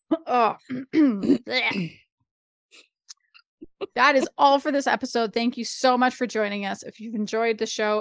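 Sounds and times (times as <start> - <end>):
speech: 0.3 - 2.0, 3.8 - 7.9
person clearing throat: 0.7 - 1.9.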